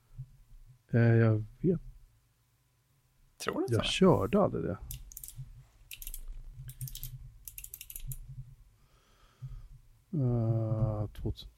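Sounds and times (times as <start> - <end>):
low hum: 0.0 - 11.5
speech: 0.9 - 1.9, 3.4 - 5.0, 10.2 - 11.5
fingers typing on a computer keyboard: 4.9 - 8.2.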